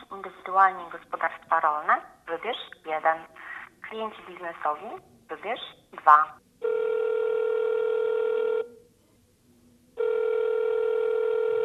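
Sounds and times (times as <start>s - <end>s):
speech: 0.5s - 6.4s
telephone ringback tone heard through a handset: 6.6s - 8.7s, 10.0s - 11.6s.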